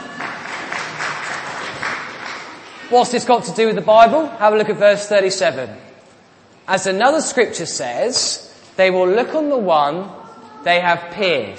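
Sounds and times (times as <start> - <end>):
church congregation applauding during a Good Friday service: 0.0 - 2.9
speech: 2.9 - 5.9, 6.7 - 11.5.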